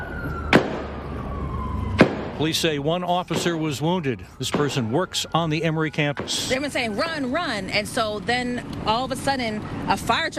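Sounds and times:
gunshot in an exchange between police officers and a shooter on a university campus: 0.5 - 1.0, 2.0 - 2.4
speech: 2.4 - 10.3.

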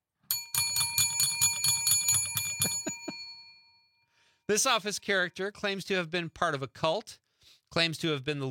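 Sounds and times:
small handheld metal bell dropped, clattering and ringing: 0.3 - 3.9
speech: 4.5 - 8.4.

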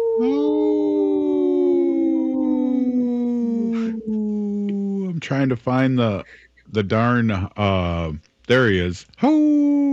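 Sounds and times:
wolf howling: 0.0 - 5.2
speech: 0.2 - 0.6, 5.2 - 9.8.

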